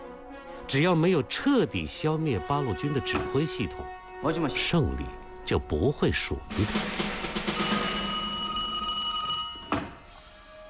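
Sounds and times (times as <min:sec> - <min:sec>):
speech: 0:00.7 - 0:07.3
telephone bell ringing in a high sustained trill: 0:07.4 - 0:10.0.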